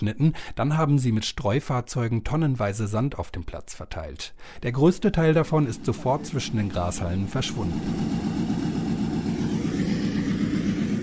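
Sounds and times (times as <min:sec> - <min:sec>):
speech: 0:00.0 - 0:08.6
tractors droning while punching aeration holes in turf of a sports training pitch: 0:05.3 - 0:11.0.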